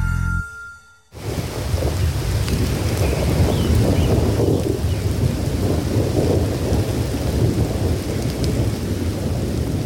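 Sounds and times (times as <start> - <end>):
brief tonal sound: 0.0 - 1.2
deep rolling thunder: 1.2 - 9.8
heavy rain in a thunderstorm: 1.2 - 9.8.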